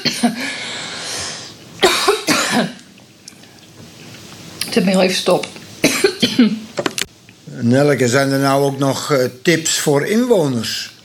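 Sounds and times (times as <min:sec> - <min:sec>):
dry coughing from a tickle in the throat: 0:00.0 - 0:00.4, 0:01.8 - 0:02.8, 0:05.8 - 0:06.6
speech: 0:04.8 - 0:05.6, 0:06.2 - 0:07.0, 0:07.6 - 0:10.9.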